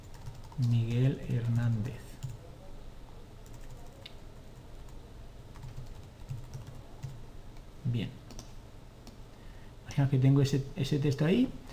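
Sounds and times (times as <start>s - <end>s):
typing on a computer keyboard: 0.0s - 0.8s, 3.4s - 4.2s, 5.5s - 7.2s, 8.3s - 9.2s
low hum: 0.0s - 11.7s
speech: 0.6s - 2.1s, 7.9s - 8.2s, 10.0s - 11.7s.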